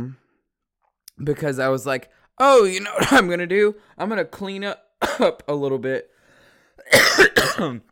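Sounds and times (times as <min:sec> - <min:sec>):
speech: 0:01.2 - 0:06.1, 0:06.8 - 0:07.9
person coughing: 0:03.0 - 0:03.3, 0:05.0 - 0:05.4, 0:06.8 - 0:07.9.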